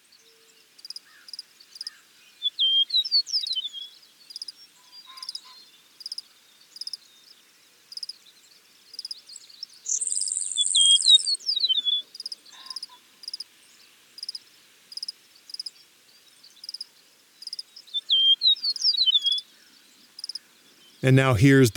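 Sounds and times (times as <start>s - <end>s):
steady pulsing chorus of frogs or insects: 0.7s - 2.0s, 4.3s - 8.3s, 12.1s - 17.9s, 19.5s - 20.6s
eastern meadowlark singing slurred whistled phrases: 9.9s - 12.0s, 17.9s - 19.4s
speech: 21.0s - 21.7s.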